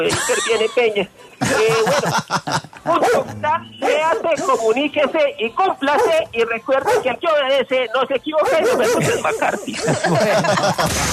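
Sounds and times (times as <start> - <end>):
laughter: 0.0 - 3.6, 8.8 - 11.1
speech: 0.0 - 11.1
dogs barking at a house: 2.9 - 4.4, 5.8 - 7.4, 8.4 - 10.7.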